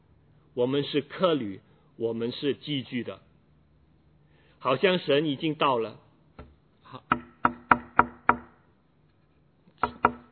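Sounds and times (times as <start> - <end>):
speech: 0.6 - 3.3, 4.6 - 6.0, 6.9 - 7.3
knocking on a door: 7.1 - 8.5, 9.8 - 10.3.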